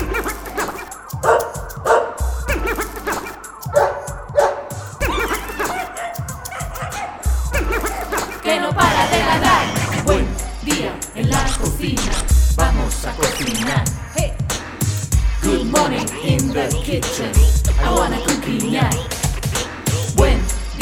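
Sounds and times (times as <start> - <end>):
laughter: 0.0 - 0.9, 2.5 - 3.4, 5.0 - 10.3
busy music with a steady rhythmic pulse: 0.0 - 20.7
dog barking: 1.2 - 2.2, 3.7 - 7.2.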